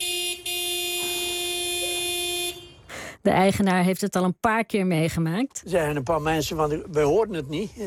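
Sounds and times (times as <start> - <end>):
car horn pressed by a dog waiting in the car: 0.0 - 2.9
speech: 3.2 - 7.8.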